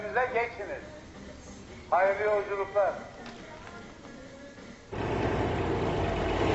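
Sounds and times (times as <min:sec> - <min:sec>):
speech: 0:00.2 - 0:01.0, 0:01.9 - 0:03.1
coach bus engine rumble pulling out of a bus station: 0:04.9 - 0:06.5.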